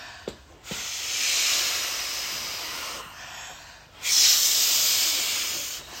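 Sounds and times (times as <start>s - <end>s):
blowing air into a balloon to inflate it: 0.7s - 3.1s, 4.0s - 5.9s.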